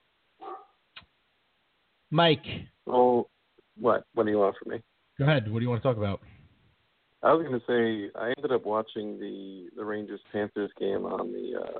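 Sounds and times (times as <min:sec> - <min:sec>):
dog barking: 0:00.4 - 0:00.8
speech: 0:02.1 - 0:06.4, 0:07.2 - 0:11.7.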